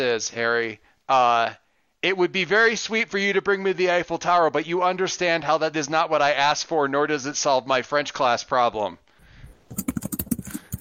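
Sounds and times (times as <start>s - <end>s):
speech: 0.0s - 9.0s
typing on a computer keyboard: 9.7s - 10.7s.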